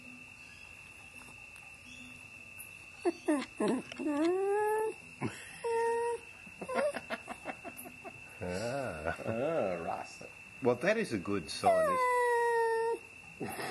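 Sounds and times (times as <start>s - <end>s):
faint steady hum: 0.0s - 13.7s
speech: 3.0s - 4.5s, 5.2s - 5.4s, 8.6s - 12.2s, 13.4s - 13.7s
dog whimpering and whining, begging for chicken: 3.0s - 5.0s, 5.6s - 7.0s, 11.6s - 13.0s.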